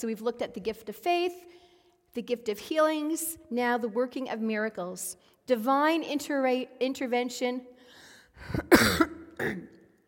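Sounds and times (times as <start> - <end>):
speech: 0.0 - 7.7, 8.4 - 9.8
person coughing rough throaty coughs: 8.5 - 9.8.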